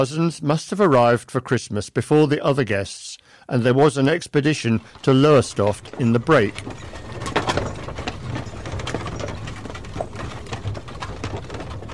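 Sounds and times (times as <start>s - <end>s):
speech: 0.0s - 7.0s
carriage wheels rumbling: 4.6s - 11.9s
two horses pulling an open carriage clip-clopping: 4.8s - 11.9s.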